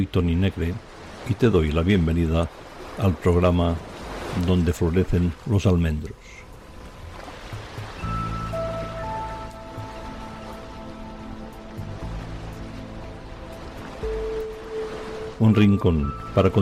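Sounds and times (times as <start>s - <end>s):
speech: 0.0s - 6.4s, 15.4s - 16.6s
Mediterranean sea waves: 0.0s - 16.6s
soft sustained musical tones: 6.2s - 16.6s.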